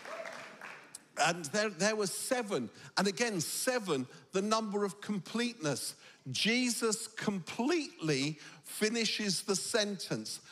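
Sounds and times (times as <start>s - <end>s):
faint audience applause: 0.0s - 1.1s
speech: 1.2s - 10.5s.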